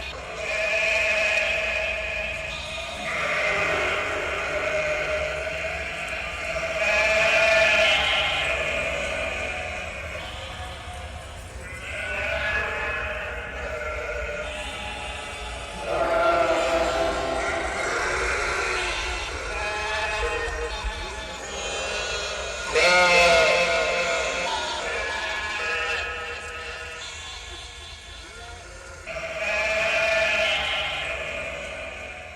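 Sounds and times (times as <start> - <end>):
flock of sheep bleating inside a container: 0.0 - 32.3.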